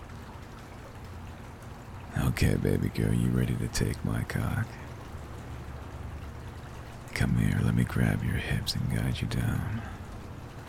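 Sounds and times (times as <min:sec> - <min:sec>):
running water: 0:00.0 - 0:10.6
speech: 0:02.4 - 0:04.8, 0:07.2 - 0:10.0.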